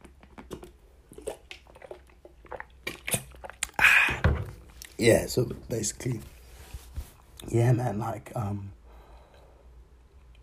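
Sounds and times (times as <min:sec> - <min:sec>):
person sipping and swallowing water from a bottle: 0:00.1 - 0:05.0
speech: 0:05.0 - 0:06.3, 0:07.5 - 0:08.8.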